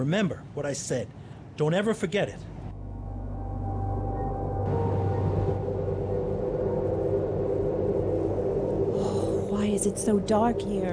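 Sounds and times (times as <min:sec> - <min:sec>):
speech: 0:00.0 - 0:02.5, 0:09.8 - 0:10.9
train rumbling as it pulls away from station: 0:04.1 - 0:10.9.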